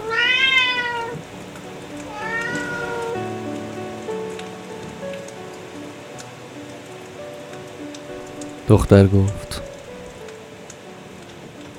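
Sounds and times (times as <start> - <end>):
cat at a window meowing: 0.0 - 3.5
steady rain pattering on a surface: 0.0 - 11.7
speech: 8.7 - 9.6.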